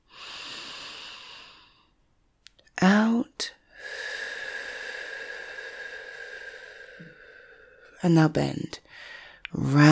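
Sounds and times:
person breathing in deeply: 0:00.0 - 0:02.0, 0:03.6 - 0:08.0, 0:08.8 - 0:09.5
speech: 0:02.8 - 0:03.6, 0:08.0 - 0:09.9.

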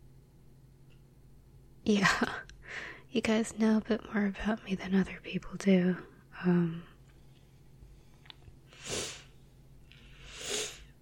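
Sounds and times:
speech: 0:01.9 - 0:06.9
person sniffing: 0:08.7 - 0:11.0.

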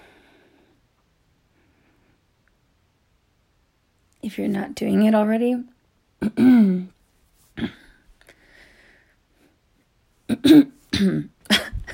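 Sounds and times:
speech: 0:04.2 - 0:07.0, 0:07.6 - 0:07.8, 0:10.4 - 0:11.3
person clearing throat: 0:06.2 - 0:06.9, 0:07.6 - 0:08.0, 0:10.3 - 0:11.9
person coughing: 0:06.2 - 0:06.9, 0:07.6 - 0:08.0, 0:10.3 - 0:11.9.

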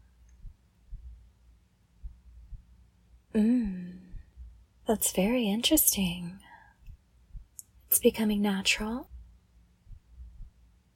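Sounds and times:
steady faint hum: 0:00.0 - 0:10.9
soft heartbeat: 0:00.3 - 0:01.4, 0:02.0 - 0:02.8, 0:03.4 - 0:04.7, 0:06.8 - 0:07.6, 0:09.0 - 0:10.7
person humming a loud sustained tone: 0:03.4 - 0:04.2
speech: 0:04.9 - 0:06.4, 0:07.9 - 0:09.1.

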